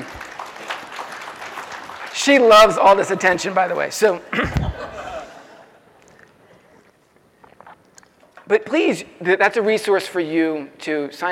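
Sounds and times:
audience clapping: 0.0 - 3.9
speech: 2.2 - 5.0, 8.5 - 11.3
laughter: 4.3 - 6.1.

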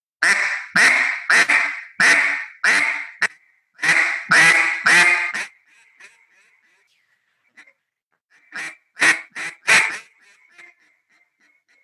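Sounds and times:
duck call blown in a quack cadence: 0.2 - 6.2, 8.3 - 11.2.

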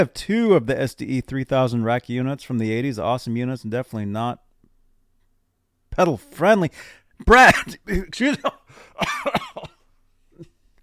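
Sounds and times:
speech: 0.0 - 4.4, 6.0 - 9.4
person coughing into a microphone: 7.5 - 10.5.

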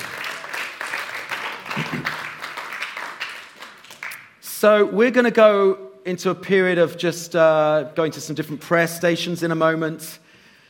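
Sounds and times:
crowd applauding: 0.0 - 4.4
speech: 4.6 - 10.2.

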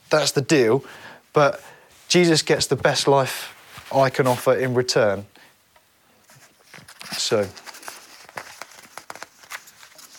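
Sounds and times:
speech: 0.1 - 5.3, 7.2 - 7.6
bits of paper crinkling as they are unstuck and peeled apart: 2.8 - 4.8, 6.3 - 10.1.

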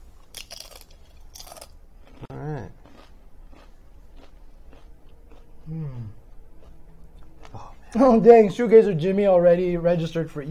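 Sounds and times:
crunchy snack being bitten and chewed: 0.3 - 7.6
speech: 7.9 - 10.4.

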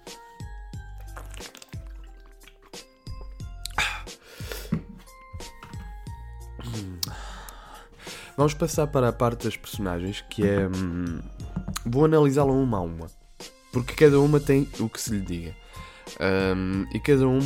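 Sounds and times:
person drinking water with wet gulps and swallows: 0.8 - 4.1, 10.4 - 11.9
small breaths between gulps: 3.8 - 5.6, 6.6 - 8.4, 15.6 - 16.2
speech: 8.4 - 17.4.

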